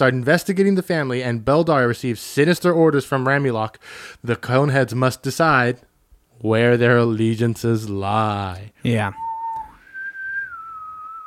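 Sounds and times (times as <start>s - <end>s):
speech: 0.0s - 9.2s
person whistling a tune: 9.2s - 11.2s.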